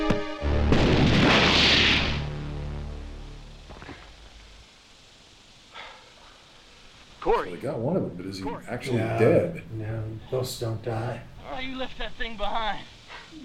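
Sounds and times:
heavy gunshot blast in a video game: 0.0 - 2.3
speech: 7.3 - 13.4.

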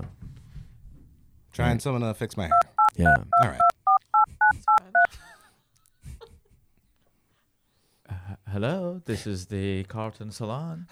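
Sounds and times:
speech: 1.6 - 3.7, 8.6 - 10.9
touch-tone telephone keypad beeps: 2.5 - 5.1.

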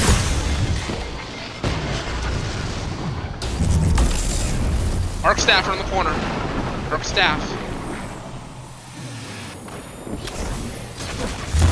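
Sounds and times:
video game grenade explosion: 0.0 - 10.0, 10.6 - 11.7
speech: 5.2 - 7.6
dense continuous video game battle noise: 5.2 - 9.6.

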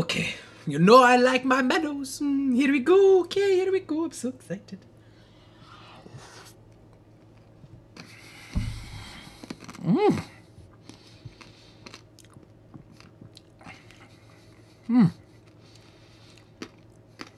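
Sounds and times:
speech: 0.1 - 4.9, 9.8 - 10.3, 14.9 - 15.2
chewing hard peppermint candy: 10.9 - 14.0, 15.4 - 17.3.

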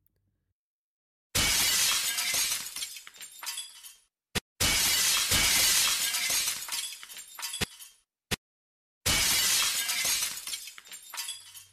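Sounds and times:
steel pipe smashing car window glass: 1.4 - 4.0, 4.6 - 7.9, 9.1 - 11.7
window glass shards tinkling and scattering: 1.7 - 4.1, 5.0 - 8.0, 9.3 - 11.7.

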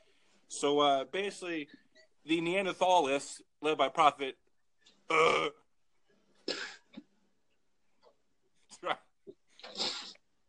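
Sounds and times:
speech: 0.5 - 4.4, 5.1 - 5.6, 8.8 - 9.0
man sneezing sharply: 9.6 - 10.2.

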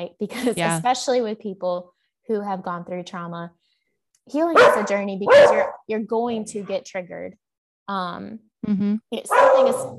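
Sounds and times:
speech: 0.0 - 3.6, 4.3 - 9.9
dog barking at home: 4.6 - 5.9, 9.3 - 9.9.

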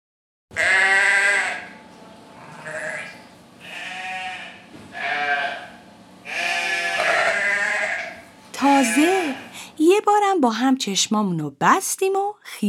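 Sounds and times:
sheep bleating: 0.5 - 9.6
speech: 8.8 - 9.2, 10.4 - 12.6.

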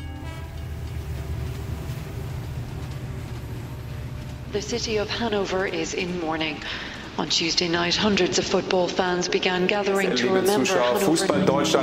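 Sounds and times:
brief tonal whine: 0.0 - 6.4
train rumbling past with rattling wheels: 0.0 - 11.8
speech: 4.5 - 11.8.

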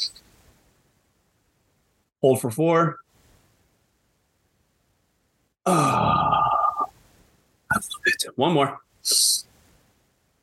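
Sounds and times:
speech: 2.2 - 3.0, 8.1 - 9.5
deep controlled exhale after a breath hold during a guided breathing exercise: 5.7 - 6.9.

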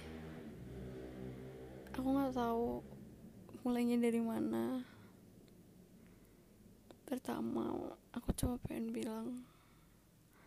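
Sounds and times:
motorcycle engine passing outside at night: 0.0 - 6.2
speech: 2.0 - 3.0, 3.6 - 4.9, 7.1 - 9.5.

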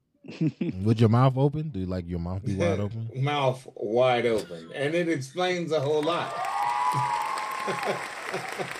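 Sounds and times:
laughter: 0.3 - 0.8, 7.0 - 8.7
speech: 0.3 - 8.7
crowd clapping: 5.8 - 8.7.

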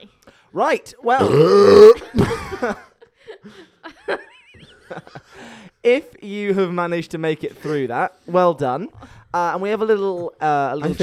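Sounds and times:
speech: 0.5 - 3.6, 4.9 - 11.0
loud burps: 1.2 - 2.4.

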